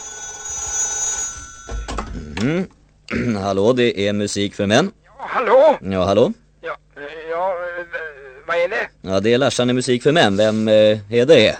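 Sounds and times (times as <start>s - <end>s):
telephone ringing in a radio studio: 0.0s - 2.4s
speech: 2.4s - 11.5s.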